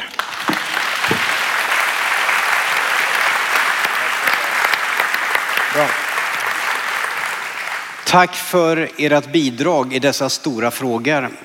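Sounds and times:
audience applause: 0:00.0 - 0:08.2
speech: 0:05.8 - 0:06.0, 0:08.1 - 0:11.4.

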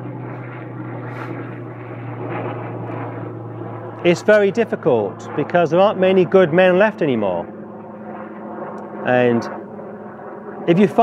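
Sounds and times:
helicopter flying overhead: 0:00.0 - 0:11.0
speech: 0:04.0 - 0:07.6, 0:09.0 - 0:09.6, 0:10.6 - 0:11.0.

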